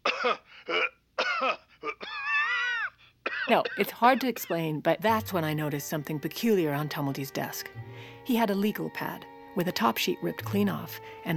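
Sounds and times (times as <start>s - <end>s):
person giving deliberate staged coughs: 0.0s - 2.4s, 3.3s - 4.7s
speech: 3.5s - 11.3s.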